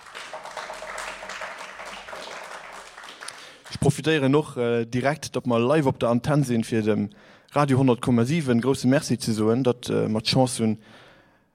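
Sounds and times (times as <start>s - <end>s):
audience applause at a live concert: 0.0s - 3.8s
speech: 3.9s - 11.0s.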